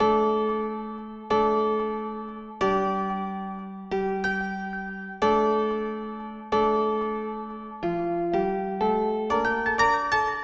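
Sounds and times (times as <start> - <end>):
acoustic piano loops: 0.0 - 10.4.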